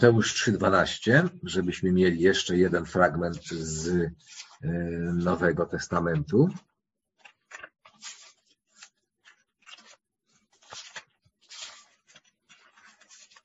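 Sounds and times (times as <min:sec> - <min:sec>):
speech: 0:00.0 - 0:06.7
paper pages being flipped through quickly: 0:02.8 - 0:06.6, 0:07.2 - 0:13.4.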